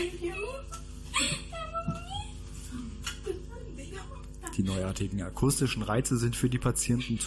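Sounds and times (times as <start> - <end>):
speech: 0.0 - 1.4, 4.6 - 7.2
woman crying tears of joy: 0.0 - 5.1.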